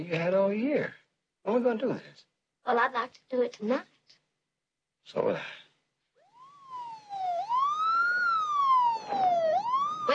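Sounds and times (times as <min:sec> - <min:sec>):
speech: 0:00.0 - 0:04.2, 0:05.0 - 0:05.6
police car siren wailing: 0:06.2 - 0:10.1.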